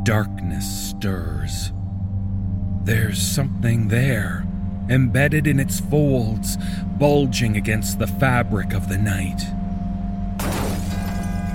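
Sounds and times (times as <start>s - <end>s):
speech: 0.0s - 1.8s, 2.8s - 9.6s
low steady hum: 0.0s - 11.5s
glass shattering in a crash in a city: 10.4s - 11.5s.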